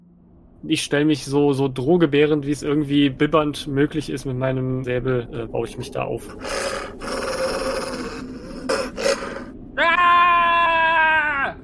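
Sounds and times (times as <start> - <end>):
speech: 0.6 - 7.1
person screaming loudly: 6.4 - 11.6
person shouting in rough breathy bursts: 9.8 - 11.6.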